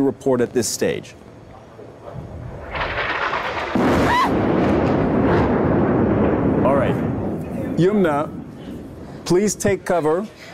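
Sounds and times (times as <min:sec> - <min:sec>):
speech: 0:00.0 - 0:01.3, 0:07.8 - 0:08.4, 0:09.3 - 0:10.5
missile strike explosions hitting a tower building: 0:02.2 - 0:09.8.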